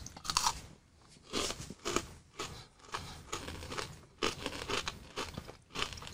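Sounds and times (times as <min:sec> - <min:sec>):
crunching a crisp square layered peanut butter cookie snack: 0:00.0 - 0:00.6, 0:01.2 - 0:06.1.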